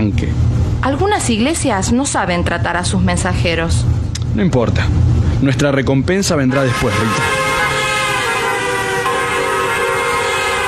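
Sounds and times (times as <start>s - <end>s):
speech: 0.0s - 7.4s
loud car horn honking: 6.5s - 10.6s.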